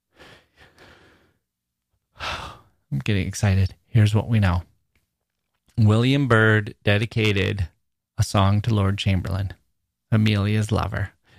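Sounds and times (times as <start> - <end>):
deep breath: 0.1 - 1.5, 2.1 - 2.8
speech: 3.0 - 4.7, 5.8 - 11.2.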